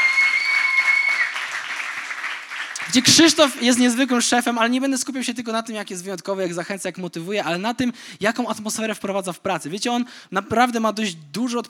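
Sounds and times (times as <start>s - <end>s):
congregation applauding in a church during a sermon: 0.0s - 3.7s
speech: 2.9s - 11.6s.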